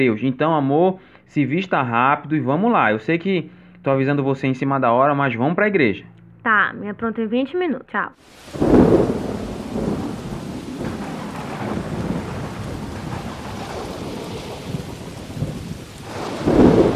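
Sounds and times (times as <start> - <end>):
speech: 0.0 - 9.8
deep rumbles of thunder: 8.2 - 16.9
heavy torrential rain pouring: 8.2 - 16.9.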